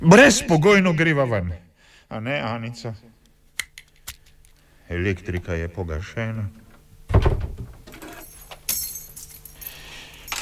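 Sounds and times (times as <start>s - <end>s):
speech: 0.0s - 3.1s, 4.9s - 6.6s
heavy thunk of a door being locked: 7.1s - 7.8s
keys jangling: 7.9s - 10.4s.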